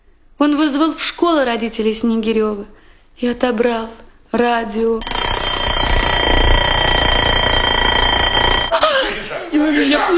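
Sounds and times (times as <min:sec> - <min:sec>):
speech: 0:00.4 - 0:05.1
alarm clock ringing with a metallic jangle: 0:05.0 - 0:09.1.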